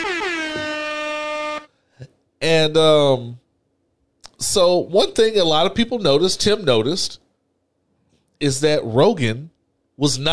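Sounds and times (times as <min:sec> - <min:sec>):
loud air horn blast: 0:00.0 - 0:01.8
speech: 0:02.4 - 0:03.4, 0:04.4 - 0:07.2, 0:08.4 - 0:10.3.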